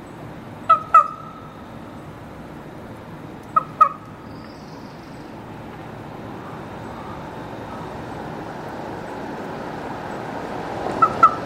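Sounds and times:
quiet background hiss: 0.0 - 11.4
raven squawks: 0.6 - 1.6, 3.5 - 4.3, 6.4 - 8.0, 10.9 - 11.4.

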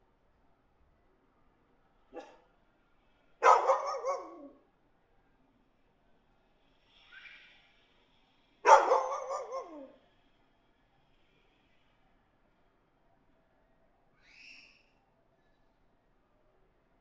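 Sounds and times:
dog barking in an alley: 2.1 - 2.5, 3.4 - 4.6, 8.6 - 10.0.

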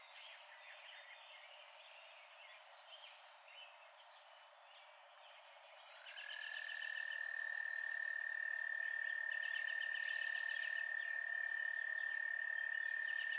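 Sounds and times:
night frog chorus holding a steady high tone: 6.2 - 13.3.

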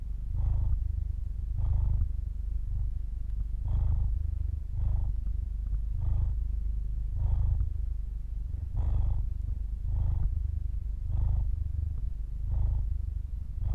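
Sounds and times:
cat purring recorded at the throat: 0.0 - 13.7.

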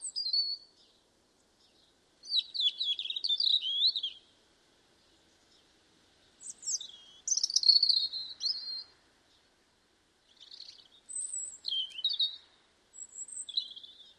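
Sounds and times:
European robin Erithacus rubecula singing: 0.0 - 9.6, 10.2 - 14.1.

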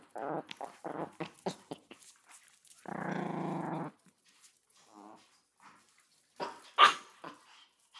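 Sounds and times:
Chihuahua growling while playing: 0.0 - 2.1, 2.8 - 4.0
Chihuahua yipping while playing: 6.8 - 7.1.

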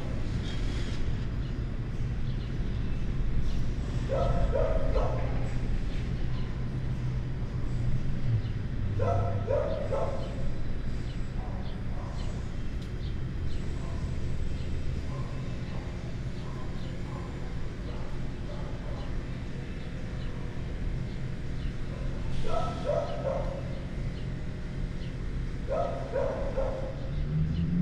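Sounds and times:
busy street traffic rumble: 0.0 - 27.8
construction noise outside: 0.0 - 27.8
dog barking inside a building: 4.1 - 5.5, 9.0 - 10.5, 11.4 - 12.4, 15.0 - 19.3, 21.9 - 23.8, 25.7 - 27.1.

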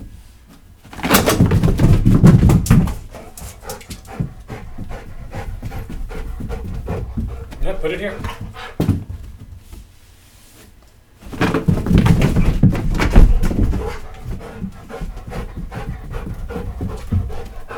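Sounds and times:
dog panting: 1.7 - 9.0, 11.9 - 17.7
speech: 7.8 - 8.4.

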